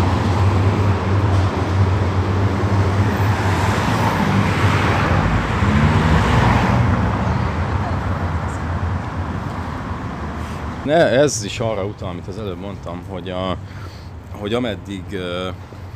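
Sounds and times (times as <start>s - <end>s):
dense city street traffic on József körút city boulevard: 0.0s - 15.9s
voices murmuring faintly: 6.5s - 15.9s
speech: 10.9s - 15.8s.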